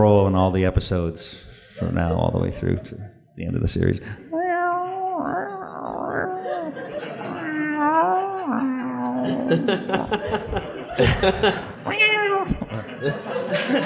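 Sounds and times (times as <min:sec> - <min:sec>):
speech: 0:00.0 - 0:04.3, 0:08.4 - 0:13.8
laughter: 0:01.8 - 0:03.2, 0:06.1 - 0:13.8
human voice imitating a dying cat: 0:04.3 - 0:10.1.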